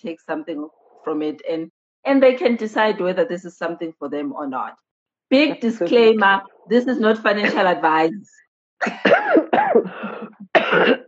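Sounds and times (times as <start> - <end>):
speech: 0.0 - 11.0
person coughing: 8.8 - 11.0.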